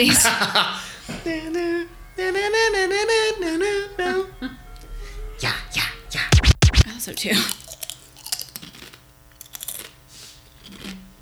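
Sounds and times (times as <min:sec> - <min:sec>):
laughter: 0:00.0 - 0:01.7, 0:03.6 - 0:04.9
speech: 0:00.0 - 0:04.6, 0:07.0 - 0:07.6
crisp crunching of someone chewing food as ASMR: 0:06.7 - 0:11.2.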